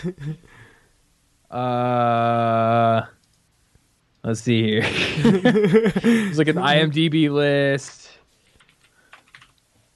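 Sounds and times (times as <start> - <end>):
speech: 0.0 - 0.6, 1.5 - 3.2, 4.2 - 8.0
laughter: 4.8 - 6.6
computer keyboard keys clicking while typing: 8.6 - 9.6.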